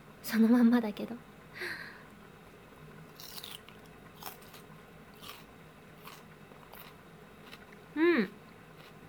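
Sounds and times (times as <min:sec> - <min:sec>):
speech: 0:00.2 - 0:01.8
biting and chewing raw undressed cabbage: 0:03.1 - 0:09.0.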